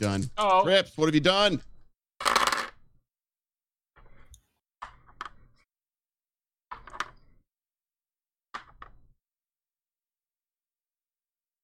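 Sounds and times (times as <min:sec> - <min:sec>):
speech: 0:00.0 - 0:01.7
four dice rolling on a hard table: 0:02.2 - 0:03.0, 0:06.7 - 0:07.4, 0:08.5 - 0:09.2.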